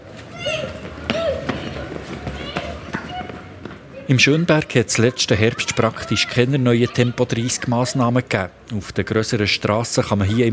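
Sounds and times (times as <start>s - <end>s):
children's quick footfalls: 0.0s - 3.9s
steady low rumble of passing traffic: 0.0s - 10.5s
children shouting and squealing while running around outdoors: 0.1s - 8.0s
speech: 4.1s - 10.5s.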